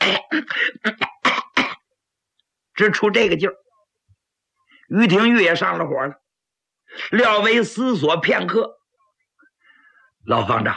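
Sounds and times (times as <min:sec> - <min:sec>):
speech: 0:00.0 - 0:01.0, 0:02.8 - 0:03.6, 0:04.9 - 0:06.2, 0:06.9 - 0:08.8, 0:10.2 - 0:10.7
throat clearing: 0:00.0 - 0:01.9
voice imitating a man coughing from an itching throat: 0:00.0 - 0:01.9.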